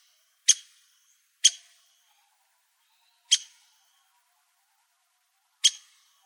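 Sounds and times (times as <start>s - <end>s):
Ladder-backed woodpecker pik calls: 0.0s - 2.3s, 2.9s - 4.1s, 5.6s - 6.2s.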